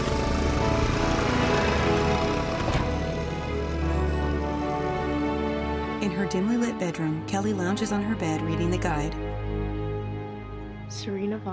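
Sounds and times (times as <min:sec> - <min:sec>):
small two-stroke moped engine driving off: 0:00.0 - 0:05.6
speech: 0:06.0 - 0:09.6, 0:10.9 - 0:11.5.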